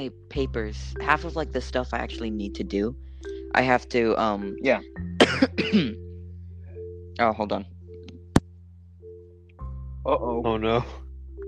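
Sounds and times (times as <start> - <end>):
speech: 0.0 - 6.0, 7.2 - 7.8, 10.0 - 11.0
person coughing: 5.2 - 6.0.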